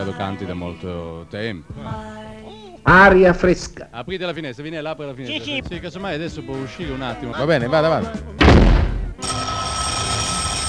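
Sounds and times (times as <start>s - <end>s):
speech: 0.0s - 8.8s
telephone bell ringing loudly: 9.2s - 10.6s.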